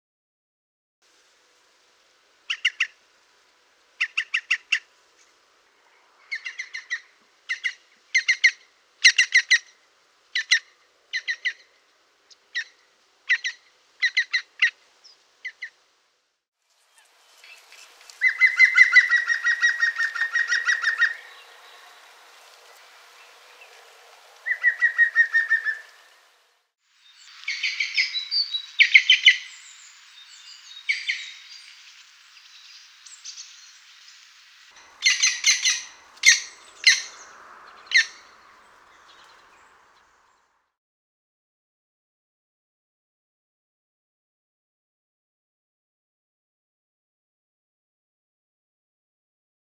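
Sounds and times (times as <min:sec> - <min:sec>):
green woodpecker calling: 0:02.5 - 0:03.0, 0:06.2 - 0:14.8, 0:18.2 - 0:21.8, 0:24.4 - 0:26.0, 0:27.1 - 0:40.4.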